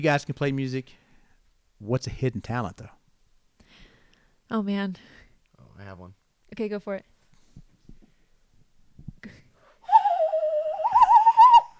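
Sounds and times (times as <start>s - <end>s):
speech: 0.0s - 1.0s, 1.8s - 3.0s, 4.5s - 5.2s, 5.8s - 7.1s
hand whistle imitating a bird call: 9.9s - 11.7s.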